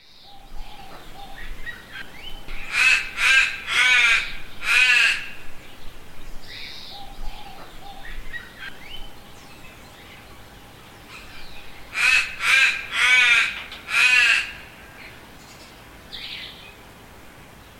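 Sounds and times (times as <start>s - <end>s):
crow giving hoarse drawn-out caws: 2.6s - 5.4s, 11.9s - 14.9s.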